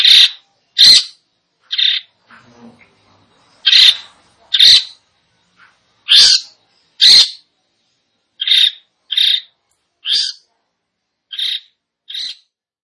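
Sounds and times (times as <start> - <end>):
Long-tailed shrike singing: 0.0 - 2.1, 3.4 - 5.0, 6.0 - 7.5, 8.4 - 10.5, 11.3 - 12.5.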